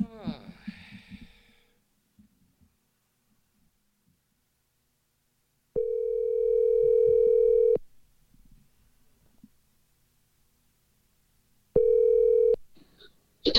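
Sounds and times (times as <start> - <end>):
electronic telephone dial tone: 5.8 - 7.8, 11.8 - 12.6.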